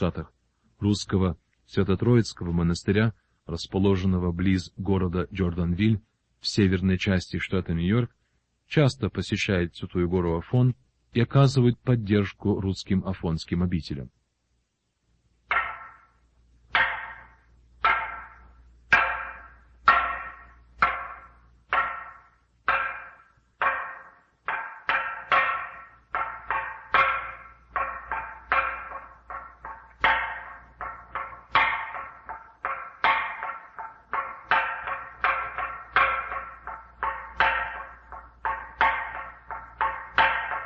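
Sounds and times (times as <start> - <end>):
speech: 0.0 - 14.2
wooden semantron on Mount Athos beaten with a mallet: 15.5 - 40.6.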